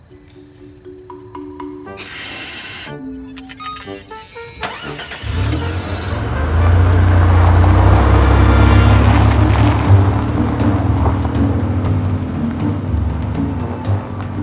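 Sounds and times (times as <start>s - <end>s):
car electronic chimes: 0.0s - 6.2s
car engine cranking and starting: 4.2s - 14.4s.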